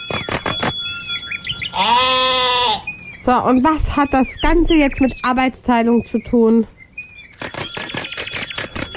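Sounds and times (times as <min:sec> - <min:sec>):
bell ringing rapidly with a bright metallic trill: 0:00.0 - 0:01.6, 0:07.4 - 0:08.9
speech: 0:01.8 - 0:02.1, 0:03.2 - 0:06.8.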